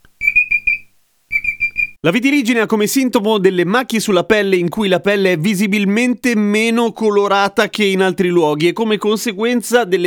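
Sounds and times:
alarm clock beeping shrill electronic tones: 0.2 - 2.0
speech: 2.0 - 10.0.

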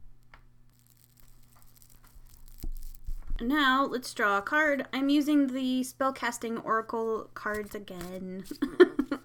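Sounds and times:
faint crackles of dried mugwort burning: 0.2 - 4.6
dried mugwort flaring up as it is lit for smoke cleansing: 0.7 - 3.3
speech: 3.4 - 8.9.

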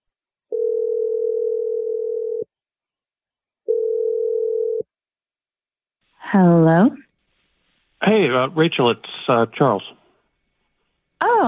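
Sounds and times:
phone ringback tone: 0.5 - 2.5, 3.7 - 4.8
speech: 6.3 - 7.0, 8.0 - 10.0.

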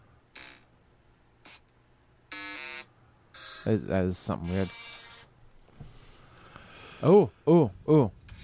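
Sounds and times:
harsh electronic buzzes: 0.3 - 0.7, 1.4 - 1.7, 2.3 - 5.4
speech: 3.6 - 4.8, 7.0 - 8.2.

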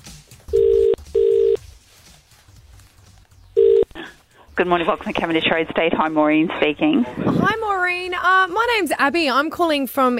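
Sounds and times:
phone line ringing tone while calling a school: 0.5 - 1.6, 3.6 - 4.0
speech: 4.6 - 10.1.

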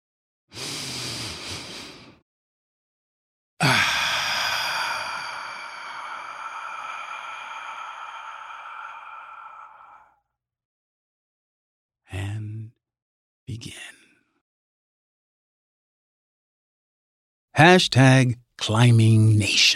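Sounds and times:
deep human breath inhaling and exhaling: 0.5 - 2.2, 3.6 - 10.2
speech: 13.6 - 14.0, 17.6 - 19.7.

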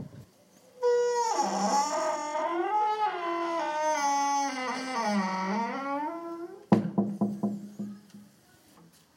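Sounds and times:
heavy castle door creaking open: 0.8 - 7.7
heavy castle door thud: 6.7 - 8.0.

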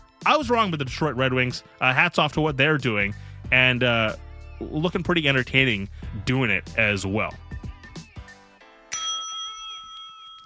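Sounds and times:
speech: 0.2 - 7.4
bright bell ringing: 8.9 - 10.4.

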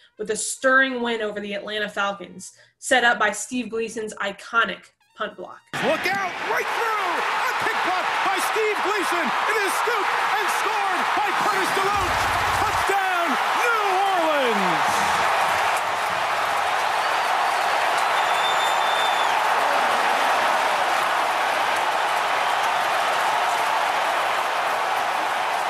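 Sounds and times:
speech: 0.2 - 15.2
excited shout: 5.8 - 25.6
massive stadium crowd roaring after a touchdown: 5.8 - 25.6.

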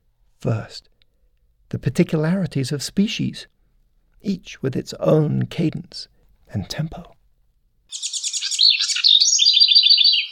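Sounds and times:
speech: 0.4 - 0.9, 1.7 - 3.5, 4.2 - 7.2, 7.9 - 8.2
house wren singing: 7.9 - 10.2.

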